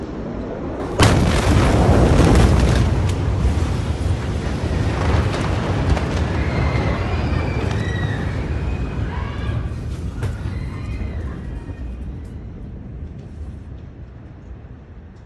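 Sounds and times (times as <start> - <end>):
massive chemical explosion boom with long heavy roar: 0.6 - 11.2.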